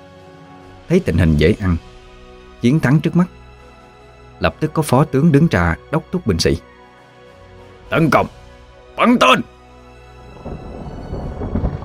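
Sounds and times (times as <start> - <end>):
speech: 0.9 - 1.9, 2.6 - 3.4, 4.4 - 6.7, 7.9 - 8.4, 9.0 - 9.5
thunder striking sound effect: 10.2 - 11.8.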